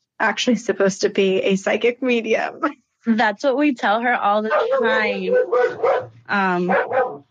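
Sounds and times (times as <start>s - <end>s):
speech: 0.2s - 7.2s
dog barking at a passing woman: 4.5s - 7.2s.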